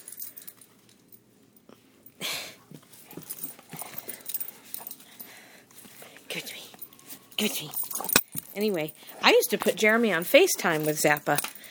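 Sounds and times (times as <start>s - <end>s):
dog playing with clattering, rattling toys: 2.8s - 11.7s
speech: 7.4s - 7.8s, 8.6s - 11.5s.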